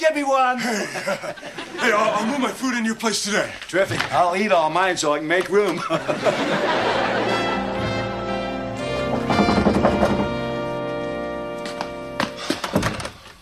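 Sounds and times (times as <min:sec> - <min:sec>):
speech: 0:00.0 - 0:07.5
laughter: 0:00.5 - 0:02.8, 0:05.6 - 0:08.2
sustained musical tones: 0:06.4 - 0:12.5
knocking on a door: 0:09.0 - 0:10.4.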